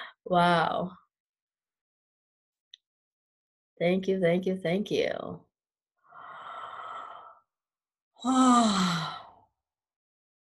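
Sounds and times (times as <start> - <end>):
speech: 0.3 - 1.0, 3.8 - 5.5, 8.2 - 9.2
person yawning: 8.2 - 9.3.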